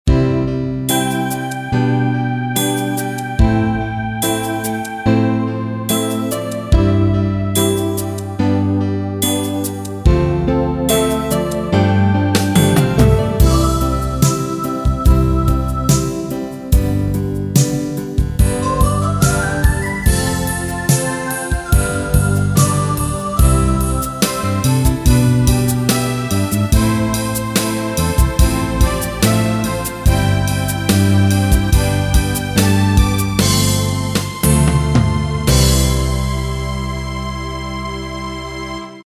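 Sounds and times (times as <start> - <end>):
pop ballad keyboard rhythm: 0.1 - 38.8.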